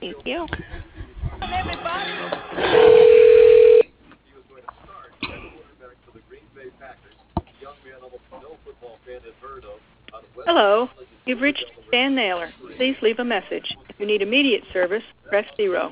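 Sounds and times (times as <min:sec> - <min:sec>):
noise: 0:00.0 - 0:15.9
speech: 0:00.2 - 0:00.9, 0:12.4 - 0:15.9
telephone ring tone as an office call is transferred to voicemail: 0:02.6 - 0:03.9.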